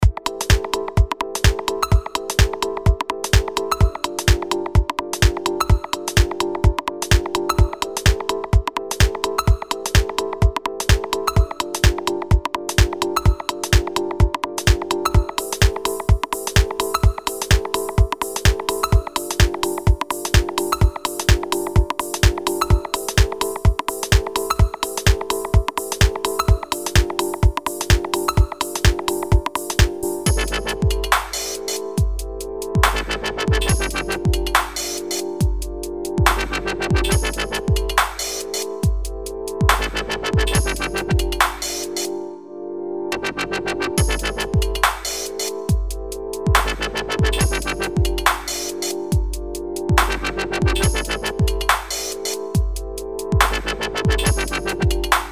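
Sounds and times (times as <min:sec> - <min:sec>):
drum machines: 0:00.0 - 0:42.1, 0:44.0 - 0:55.2.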